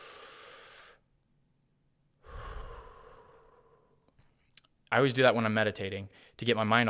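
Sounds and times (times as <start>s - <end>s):
slow deep breathing during a relaxation exercise: 0.0s - 1.1s, 2.2s - 4.6s
speech: 4.9s - 6.8s.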